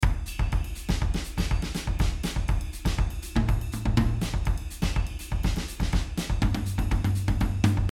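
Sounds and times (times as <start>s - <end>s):
drums: 0.0s - 7.9s
Afro-Latin music: 0.2s - 7.9s.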